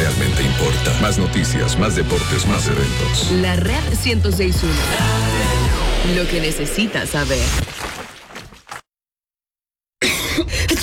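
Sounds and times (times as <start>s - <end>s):
speech: 1.1s - 7.8s
person coughing: 10.0s - 10.8s.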